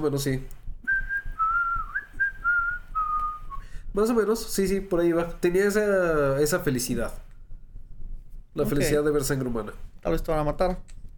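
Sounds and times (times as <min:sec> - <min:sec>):
speech: 0:00.0 - 0:00.6, 0:03.9 - 0:07.2, 0:08.5 - 0:11.0
person whistling a slow eerie tune: 0:00.8 - 0:03.8.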